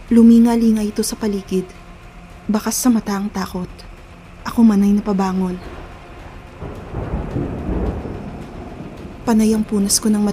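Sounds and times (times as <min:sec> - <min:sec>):
speech: 0:00.1 - 0:01.8, 0:02.5 - 0:05.8, 0:09.3 - 0:10.3
deep rumble of thunder: 0:05.1 - 0:10.3
heavy rain pouring: 0:05.6 - 0:10.3.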